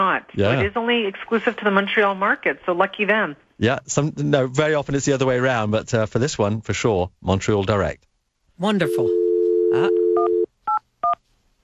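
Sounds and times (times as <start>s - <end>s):
speech: 0.2s - 10.0s
phone dial tone: 8.8s - 11.2s.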